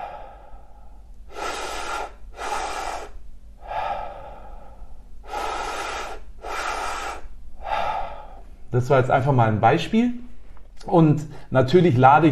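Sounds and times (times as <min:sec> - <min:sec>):
deep breathing into belly and chest during a breathwork exercise lying down: 0:00.0 - 0:08.8
speech: 0:08.7 - 0:10.2, 0:10.8 - 0:12.2.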